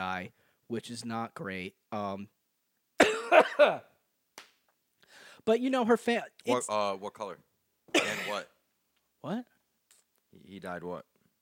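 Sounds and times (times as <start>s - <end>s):
speech: 0.0s - 2.4s, 3.3s - 3.9s, 5.4s - 8.6s, 9.2s - 9.5s, 10.3s - 11.1s
person coughing harshly: 3.0s - 3.8s, 7.9s - 8.5s.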